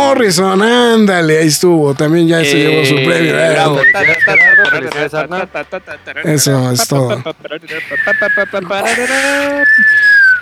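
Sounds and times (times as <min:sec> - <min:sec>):
speech: 0:00.1 - 0:10.1
laughter: 0:02.4 - 0:10.3
loud shrill human whistle: 0:07.8 - 0:10.3.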